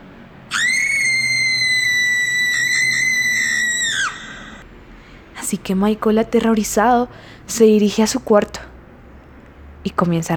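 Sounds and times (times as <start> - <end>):
long high-pitched scream: 0.5 - 4.6
speech: 5.5 - 8.7, 9.8 - 10.3.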